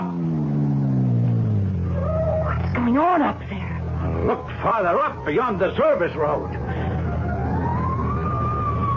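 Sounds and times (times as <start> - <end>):
low steady rumble of road traffic: 0.0 - 8.9
fire engine siren wailing: 1.7 - 3.0, 3.9 - 8.9
speech: 3.0 - 3.6, 4.2 - 6.7.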